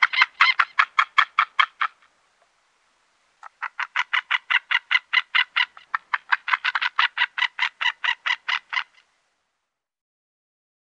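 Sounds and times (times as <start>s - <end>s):
White-tailed eagle calling: 0.0s - 2.1s, 3.4s - 9.0s.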